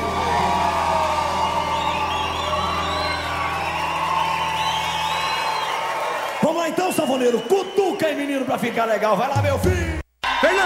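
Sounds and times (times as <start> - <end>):
scattered whoops and shouts from the audience: 0.0 - 6.4
dense audience crowd roaring and cheering: 0.0 - 10.6
speech: 6.5 - 10.6.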